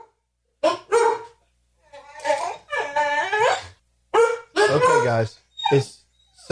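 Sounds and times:
dog barking: 0:00.0 - 0:01.4, 0:03.4 - 0:05.3
speech: 0:04.7 - 0:06.4.

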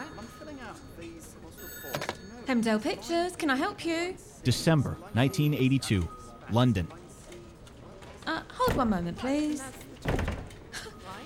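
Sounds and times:
speech: 0:02.5 - 0:07.0, 0:08.7 - 0:09.8
door violently forced and wrenched off its hinges: 0:10.0 - 0:10.6.

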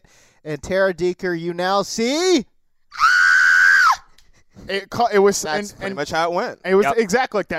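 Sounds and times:
speech: 0:00.4 - 0:03.1, 0:04.6 - 0:07.5
woman's reenacted shriek of surprise: 0:03.0 - 0:04.1.

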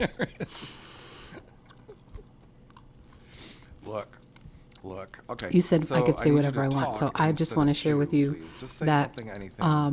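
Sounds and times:
laughter: 0:00.0 - 0:00.7
speech: 0:00.0 - 0:00.9, 0:03.8 - 0:04.2, 0:04.8 - 0:09.9
chewing and crunching toast: 0:01.4 - 0:05.2.

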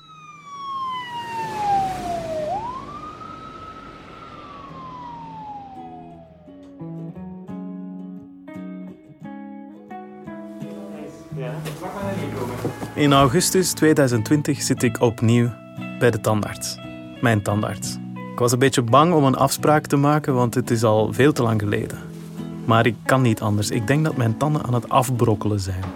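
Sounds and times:
ambulance siren wailing: 0:00.0 - 0:07.2
soft music with steady notes: 0:00.1 - 0:25.9
speech: 0:11.4 - 0:22.1, 0:22.7 - 0:25.9.

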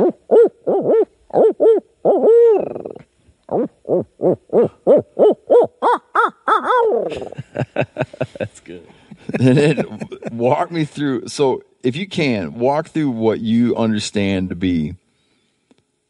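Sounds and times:
person imitating owl hoots: 0:00.0 - 0:07.4
laughter: 0:07.1 - 0:10.5
speech: 0:09.4 - 0:15.0.

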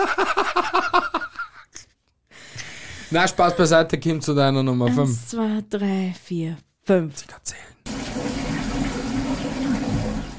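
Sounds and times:
speech: 0:00.0 - 0:01.0, 0:03.1 - 0:07.6
laughter: 0:00.0 - 0:01.8
toilet flushing: 0:07.8 - 0:10.3.

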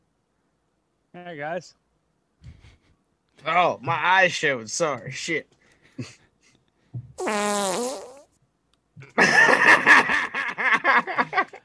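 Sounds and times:
speech: 0:01.2 - 0:01.8, 0:03.4 - 0:06.2, 0:07.2 - 0:08.1
fart noises: 0:07.2 - 0:08.3
laughter: 0:09.1 - 0:11.6.

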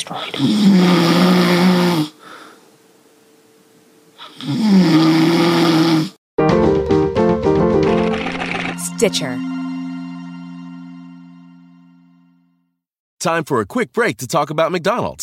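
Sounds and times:
speech: 0:00.1 - 0:01.4, 0:09.0 - 0:09.6, 0:13.2 - 0:15.2
person snoring: 0:00.2 - 0:02.4, 0:04.2 - 0:06.2, 0:08.0 - 0:08.9
music: 0:06.4 - 0:12.8.

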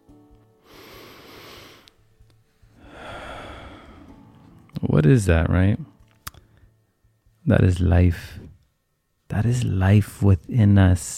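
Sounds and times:
deep breath: 0:00.6 - 0:02.0, 0:02.6 - 0:04.2
speech: 0:04.9 - 0:05.9, 0:07.5 - 0:08.5, 0:09.3 - 0:11.1.

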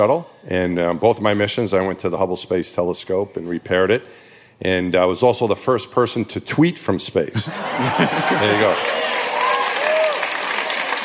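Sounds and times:
speech: 0:00.0 - 0:09.1
laughter: 0:07.3 - 0:09.2
crowd applause: 0:07.8 - 0:11.0
faint whoops and cheers from a crowd: 0:07.8 - 0:11.0.

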